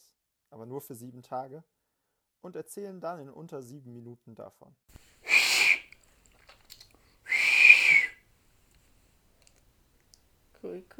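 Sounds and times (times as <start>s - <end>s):
speech: 0.5s - 1.8s, 2.4s - 5.4s, 10.6s - 10.9s
breathy hooting whistles blown through cupped hands: 5.3s - 5.9s, 7.3s - 8.2s.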